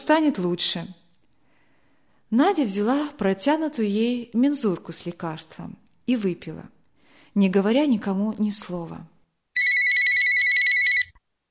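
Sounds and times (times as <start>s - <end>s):
speech: 0.0s - 1.0s, 2.3s - 6.8s, 7.4s - 9.1s
telephone ringing with an electronic trill: 9.6s - 11.2s.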